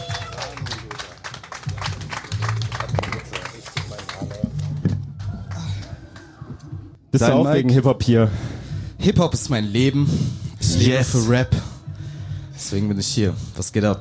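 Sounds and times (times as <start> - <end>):
crowd cheering and shouting: 0.0 - 0.8
audience clapping: 0.0 - 6.4
speech: 7.1 - 11.6, 12.7 - 13.9.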